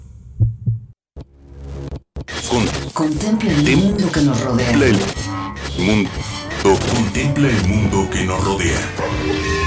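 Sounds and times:
low heartbeat: 0:00.4 - 0:01.0
speech: 0:02.5 - 0:09.5.

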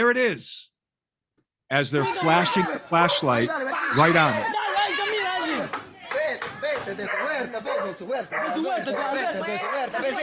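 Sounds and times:
speech: 0:00.0 - 0:00.7, 0:01.7 - 0:04.6, 0:06.9 - 0:10.2
people shouting trying to get dogs into the backyard: 0:01.9 - 0:10.2
laughter: 0:02.0 - 0:10.2
dog barking furiously in a played video: 0:07.0 - 0:10.0.

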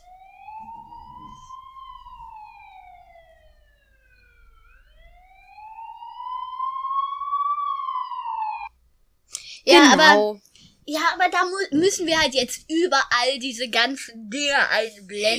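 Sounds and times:
ambulance siren sound effect wailing: 0:00.0 - 0:08.8
speech: 0:09.7 - 0:15.3.

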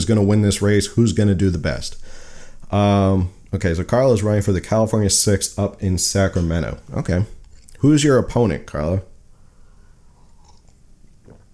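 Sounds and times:
speech: 0:00.0 - 0:09.1
faint hiss: 0:00.0 - 0:11.5
person sipping and swallowing coffee: 0:07.4 - 0:07.8, 0:09.6 - 0:11.5.

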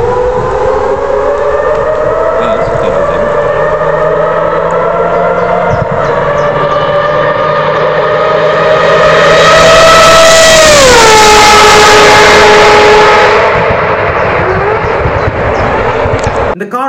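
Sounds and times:
Mazda 787B rotary-engine race car exhaust shrieking: 0:00.0 - 0:16.6.

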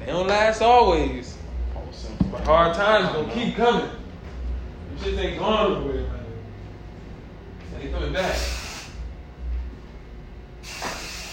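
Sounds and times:
speech: 0:00.1 - 0:01.3, 0:02.0 - 0:04.0, 0:05.0 - 0:06.2, 0:07.8 - 0:08.6
aerosol air freshener spray hissing: 0:10.6 - 0:11.3.

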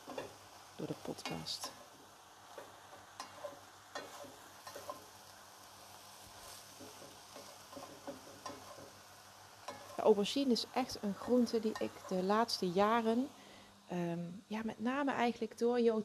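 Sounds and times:
food sizzling in a pan: 0:00.0 - 0:16.0
speech: 0:00.8 - 0:01.8, 0:10.0 - 0:16.0
utensil stirring and scraping in a pan: 0:02.5 - 0:05.2, 0:06.3 - 0:09.0, 0:09.6 - 0:10.1.

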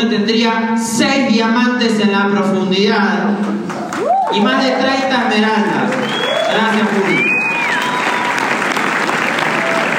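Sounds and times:
speech: 0:00.0 - 0:03.7, 0:04.3 - 0:07.4
audience applause: 0:03.7 - 0:09.9
whistles: 0:05.9 - 0:08.5.

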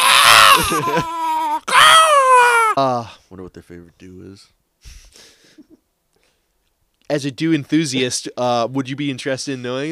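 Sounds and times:
person screeching imitating a pterodactyl: 0:00.0 - 0:02.8
speech: 0:00.6 - 0:01.2, 0:02.8 - 0:05.0, 0:07.1 - 0:09.9.

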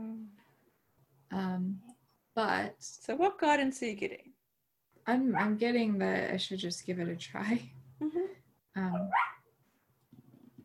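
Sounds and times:
speech: 0:01.3 - 0:04.3, 0:05.0 - 0:09.3
puppy barking while dreaming: 0:08.9 - 0:09.4.

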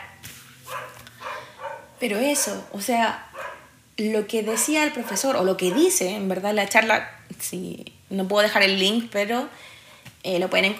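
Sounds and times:
neighbor's dog barking muffled: 0:00.0 - 0:03.7, 0:04.4 - 0:06.0
speech: 0:02.0 - 0:03.3, 0:04.0 - 0:10.7.

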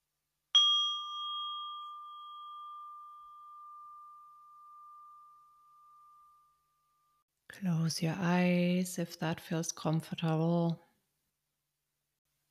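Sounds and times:
meditation bell ringing: 0:00.6 - 0:07.2
speech: 0:07.6 - 0:10.8.

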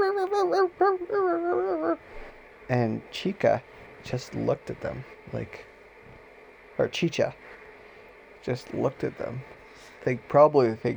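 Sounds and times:
human voice imitating two excited dogs barking: 0:00.0 - 0:02.0
speech: 0:00.4 - 0:05.7, 0:06.8 - 0:07.5, 0:08.4 - 0:10.9.

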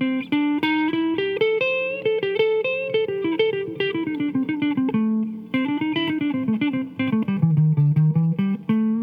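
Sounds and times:
solo electric guitar pentatonic lead with chromatic passing tones: 0:00.0 - 0:09.0.

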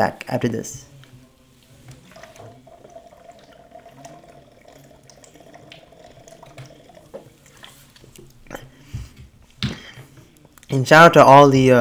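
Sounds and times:
speech: 0:00.0 - 0:00.9, 0:10.7 - 0:11.8
liquid flowing and sloshing in a water bottle: 0:00.0 - 0:11.8
person drinking from a water bottle: 0:00.0 - 0:11.8
plastic water bottle clunks as the bottle is handled: 0:09.0 - 0:10.2.

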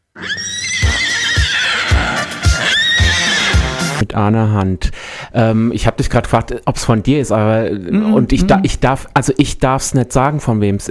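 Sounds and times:
horse neighing: 0:00.2 - 0:04.0
speech: 0:04.2 - 0:10.9
steady regular low thumping beat: 0:08.0 - 0:08.8.

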